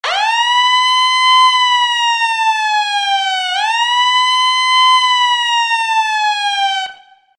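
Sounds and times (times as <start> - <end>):
ambulance siren: 0.0 - 7.3.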